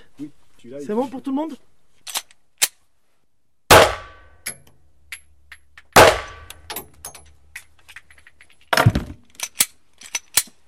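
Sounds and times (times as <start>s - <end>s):
speech: 0.2s - 1.7s
gunshots fired during a forensic firing test: 3.7s - 4.2s, 6.0s - 6.5s
metallic clicks and clinks: 4.4s - 8.7s, 9.3s - 10.6s.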